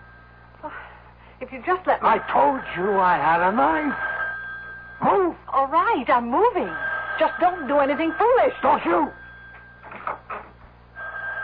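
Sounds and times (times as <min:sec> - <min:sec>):
speech: 0:00.6 - 0:04.1, 0:05.0 - 0:09.2
telephone ringing beside a bed: 0:01.8 - 0:11.4.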